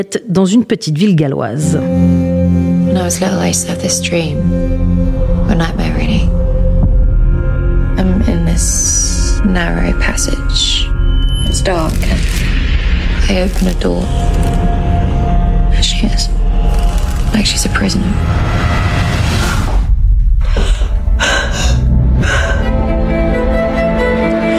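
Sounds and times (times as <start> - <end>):
speech: 0.0 - 6.3, 8.6 - 10.9, 11.5 - 12.6, 13.3 - 14.7, 16.0 - 16.4, 17.4 - 18.9
dark droning trailer soundtrack: 1.6 - 24.5
woman breathing heavily in fright: 20.4 - 23.0.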